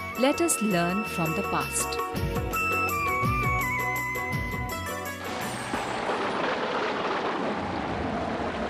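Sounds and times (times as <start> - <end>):
short melodic musical passage: 0.0 - 5.8
speech: 0.2 - 2.8
heavy rain pouring down: 5.3 - 8.6.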